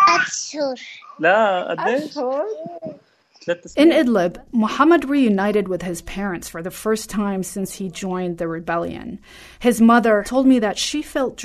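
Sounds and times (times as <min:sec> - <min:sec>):
three-year-old girl babbling: 0:00.0 - 0:01.1, 0:01.8 - 0:03.0
speech: 0:00.5 - 0:11.4.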